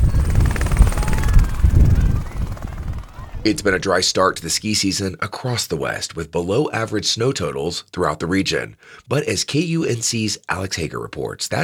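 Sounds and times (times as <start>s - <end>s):
helicopter powering up for takeoff: 0.0s - 4.6s
speech: 3.4s - 11.6s.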